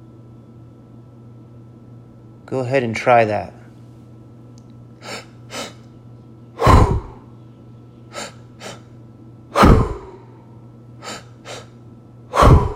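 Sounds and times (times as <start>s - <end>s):
speech: 2.5s - 3.6s
soft inhales filling the belly and then the chest: 5.0s - 5.8s, 8.1s - 8.9s, 9.9s - 11.8s
loud, longer breathy exhale in a deep breathing demonstration: 6.6s - 7.2s, 8.1s - 8.9s, 9.6s - 10.4s, 11.0s - 11.7s, 12.3s - 12.7s.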